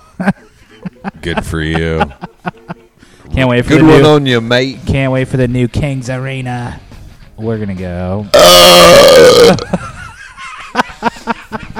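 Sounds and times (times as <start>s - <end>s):
laughter: 0.0s - 3.0s, 9.6s - 11.7s
speech: 0.2s - 2.3s, 3.4s - 6.8s, 7.4s - 9.9s
loud drawn-out raspy burp: 8.3s - 9.8s.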